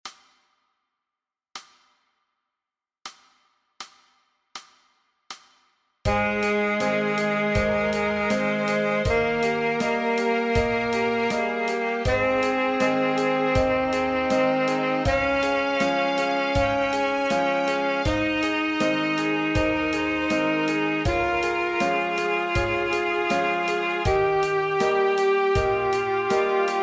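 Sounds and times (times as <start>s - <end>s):
F scale: 6.1s - 26.8s.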